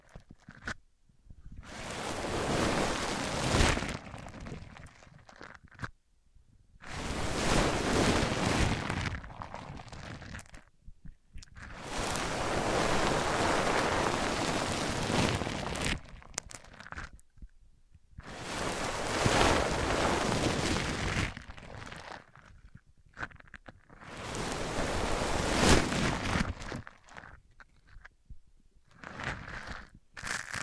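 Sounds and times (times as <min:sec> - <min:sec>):
microphone rubbed against a surface with coarse scraping and crinkling: 0:01.4 - 0:04.8, 0:06.9 - 0:10.4, 0:11.7 - 0:16.0, 0:18.2 - 0:22.1, 0:24.0 - 0:26.8.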